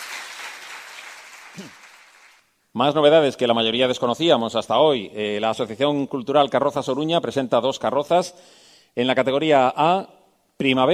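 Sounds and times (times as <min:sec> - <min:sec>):
audience applause welcoming a parade float group: 0:00.0 - 0:02.4
speech: 0:01.6 - 0:01.8, 0:02.8 - 0:10.9.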